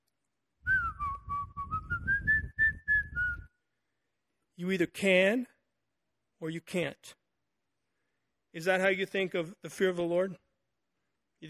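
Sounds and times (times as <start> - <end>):
person whistling a short melodic tune: 0.7 - 3.6
speech: 4.6 - 5.5, 6.4 - 7.2, 8.5 - 10.4.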